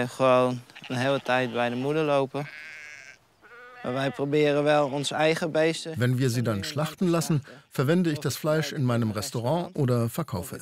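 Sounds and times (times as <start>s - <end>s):
speech: 0.0s - 2.7s, 3.8s - 10.6s
sheep bleating: 0.0s - 5.5s.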